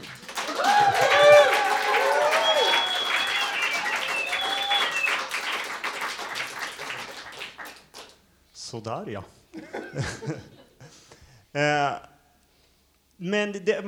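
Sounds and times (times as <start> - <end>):
scattered cheering voices: 0.0 - 5.4
live audience clapping: 0.0 - 8.2
shrill whistles: 0.7 - 5.4
speech: 8.9 - 10.6, 11.6 - 12.1, 13.2 - 13.8
laughter: 9.6 - 11.1.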